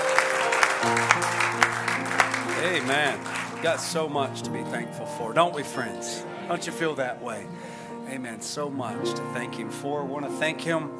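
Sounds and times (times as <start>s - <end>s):
audience clapping: 0.0s - 4.5s
sustained organ-like chords: 0.0s - 10.9s
speech: 2.8s - 10.9s.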